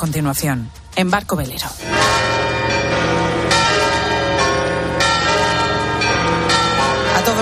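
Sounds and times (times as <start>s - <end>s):
speech: 0.0s - 3.2s
cathedral bells of Santiago de Compostela tolling: 1.8s - 7.4s.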